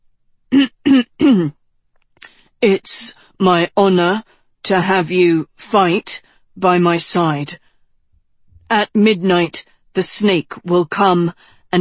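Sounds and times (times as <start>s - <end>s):
man clearing his throat: 0.5s - 1.5s
speech: 1.3s - 1.6s, 2.6s - 7.6s, 8.7s - 11.8s.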